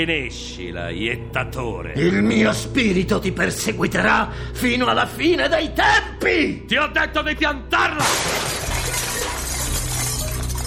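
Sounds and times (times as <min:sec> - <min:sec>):
speech: 0:00.0 - 0:08.6
mirror shattering: 0:08.0 - 0:10.6.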